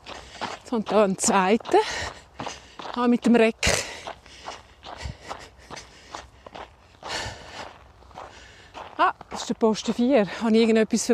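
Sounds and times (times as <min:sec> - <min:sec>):
jogging footsteps crunching on a loose forest path: 0:00.0 - 0:11.1
speech: 0:00.7 - 0:02.2, 0:03.0 - 0:03.8, 0:09.5 - 0:11.1
heavy breathing: 0:01.8 - 0:02.9, 0:03.6 - 0:08.8.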